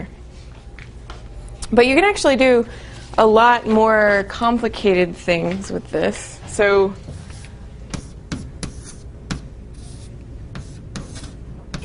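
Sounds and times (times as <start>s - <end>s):
steady low hum: 0.0s - 11.8s
speech: 1.7s - 7.1s
drawing strokes sketching a knot diagram: 7.2s - 11.8s.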